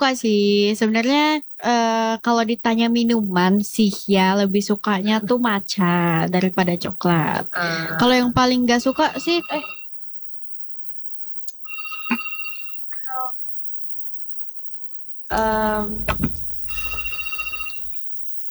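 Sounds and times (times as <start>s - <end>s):
speech: 0.0s - 9.8s, 15.3s - 16.4s
telephone ringtone for an incoming call: 8.8s - 9.9s, 11.6s - 13.3s, 15.3s - 18.0s.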